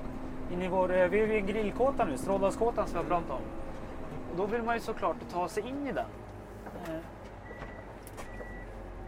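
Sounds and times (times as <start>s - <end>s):
snow groomer rumbling as it shifts into reverse at a grill hut: 0.0s - 6.6s
speech: 0.5s - 3.7s, 4.4s - 6.2s, 6.8s - 7.2s.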